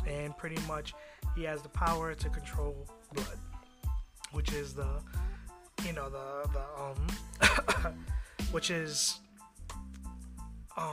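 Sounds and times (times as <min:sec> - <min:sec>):
speech: 0:00.1 - 0:03.5, 0:04.3 - 0:09.2
person clearing throat: 0:07.0 - 0:08.0
person coughing: 0:07.0 - 0:08.0.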